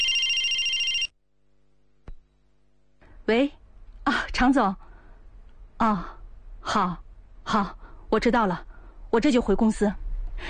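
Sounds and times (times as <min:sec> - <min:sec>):
phone ringing with a bright electronic tone: 0:00.0 - 0:01.1
quiet room hum: 0:00.0 - 0:10.4
speech: 0:03.3 - 0:03.6, 0:04.4 - 0:04.8, 0:05.8 - 0:10.4.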